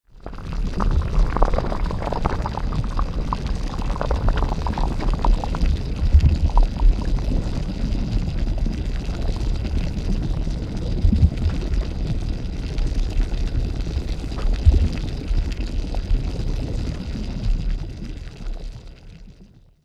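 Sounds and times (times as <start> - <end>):
magma bubbling in a volcano lava lake: 0.0 - 19.6.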